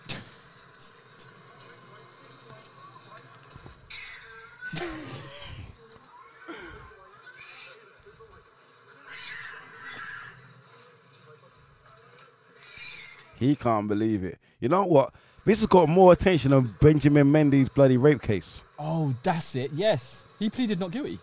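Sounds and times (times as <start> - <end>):
cat yowling and meowing in a video: 3.9 - 4.8, 9.0 - 10.4, 12.6 - 13.4
speech: 4.7 - 5.2, 13.4 - 21.2.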